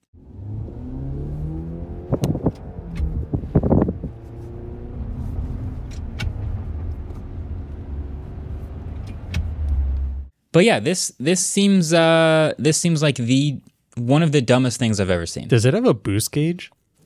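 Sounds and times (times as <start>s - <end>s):
car engine with simulated stick shift shifting gears: 0.2s - 10.3s
speech: 10.6s - 16.8s.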